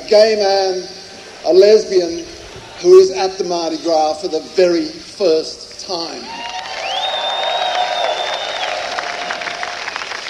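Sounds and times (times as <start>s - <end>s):
speech: 0.1s - 6.5s
large crowd applauding and cheering: 6.2s - 10.2s
long piercing whistle: 6.7s - 9.1s.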